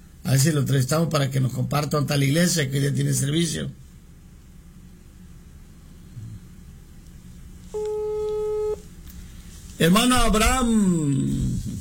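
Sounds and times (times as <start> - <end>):
speech: 0.3 - 3.8, 9.8 - 11.4
steady electronic telephone tone of an unanswered call: 7.8 - 8.8.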